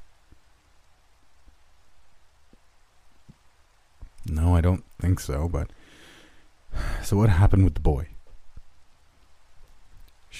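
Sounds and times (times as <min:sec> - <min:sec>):
rain lashing a roof: 0:00.0 - 0:10.3
speech: 0:04.6 - 0:05.8, 0:06.8 - 0:08.1.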